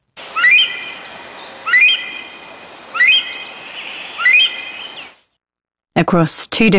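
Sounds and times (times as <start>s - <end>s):
Himalayan monal pheasant giving loud rising whistled calls: 0.3s - 2.3s, 2.9s - 5.2s
speech: 6.1s - 6.7s.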